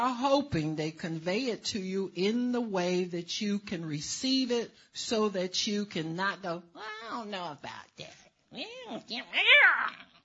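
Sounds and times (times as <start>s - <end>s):
speech: 0.0s - 10.1s
cats yowling and caterwauling in a fight: 9.3s - 10.1s.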